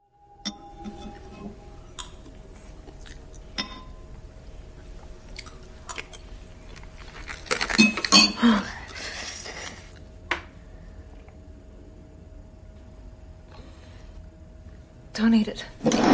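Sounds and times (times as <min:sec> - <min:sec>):
glass crunching between teeth in a bowl of soup: 0:02.0 - 0:04.0, 0:04.8 - 0:08.4
speech: 0:15.2 - 0:16.0.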